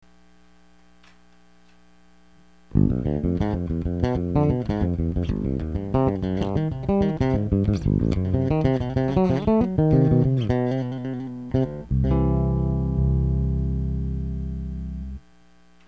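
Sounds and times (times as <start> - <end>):
bass: 2.7 - 15.3.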